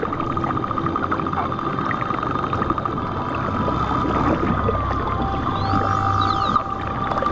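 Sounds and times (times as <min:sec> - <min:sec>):
low engine-like underwater rumble: 0:00.0 - 0:07.2
pilot whales whistling underwater in the Strait of Bonifacio: 0:05.2 - 0:07.2.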